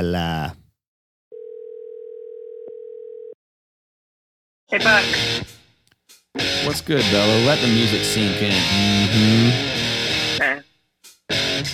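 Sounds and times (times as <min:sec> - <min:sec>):
speech: 0:00.0 - 0:00.6, 0:04.7 - 0:05.6, 0:06.4 - 0:10.6
telephone dial tone while placing a call: 0:01.3 - 0:03.4.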